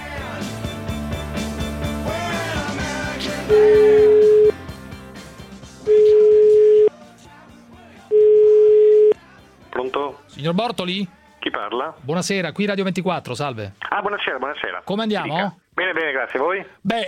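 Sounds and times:
music: 0.0 - 16.4
speech: 3.5 - 3.8, 10.5 - 17.0
outgoing telephone call ringback tones: 3.5 - 4.6, 5.9 - 6.9, 8.1 - 9.2.

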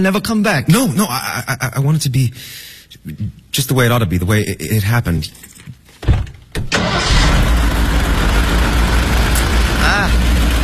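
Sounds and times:
speech: 0.0 - 6.2
car engine with a sprung crankshaft running rough: 6.8 - 10.6.

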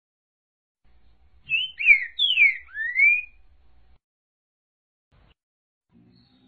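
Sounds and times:
green-winged saltator singing whistled song: 1.4 - 3.5.

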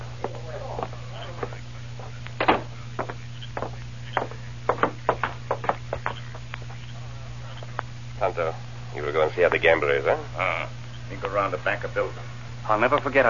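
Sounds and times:
low steady hum: 0.0 - 13.2
knocking on a door: 2.4 - 6.1
speech: 8.3 - 13.2.

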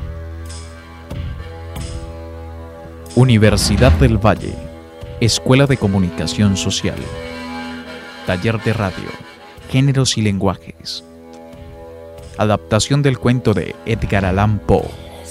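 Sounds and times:
speech: 3.3 - 7.4, 8.3 - 11.1, 12.4 - 15.0
deep steady heartbeat thumping: 3.5 - 4.5.

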